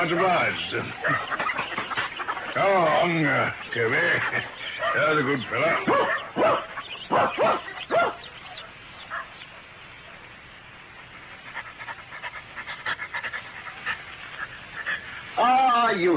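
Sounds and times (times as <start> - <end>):
speech: 0.0 - 1.6, 2.6 - 7.7, 16.0 - 16.1
dog panting: 0.0 - 8.2, 11.0 - 15.4
dog barking: 4.7 - 9.4.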